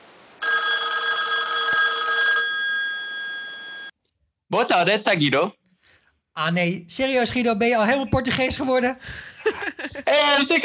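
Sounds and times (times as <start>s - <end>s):
electronic telephone ring tone for an outgoing call: 0.4s - 4.0s
speech: 4.5s - 5.6s, 6.4s - 10.6s
laughter: 8.2s - 10.6s.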